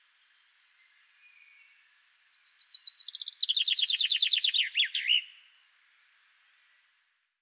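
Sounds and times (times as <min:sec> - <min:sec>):
common chaffinch Fringilla coelebs singing: 0:00.2 - 0:05.6.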